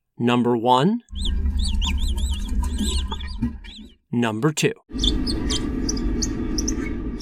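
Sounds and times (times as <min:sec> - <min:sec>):
speech: 0:00.2 - 0:01.8, 0:04.2 - 0:05.4
steady low rumble: 0:01.1 - 0:03.8, 0:04.9 - 0:07.2
mole rat colony chirping: 0:01.1 - 0:04.0, 0:04.9 - 0:07.2.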